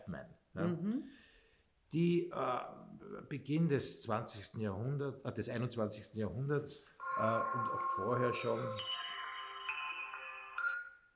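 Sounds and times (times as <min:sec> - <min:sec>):
speech: 0:00.1 - 0:01.3, 0:01.9 - 0:09.0
mobile phone ringtone: 0:07.0 - 0:11.1.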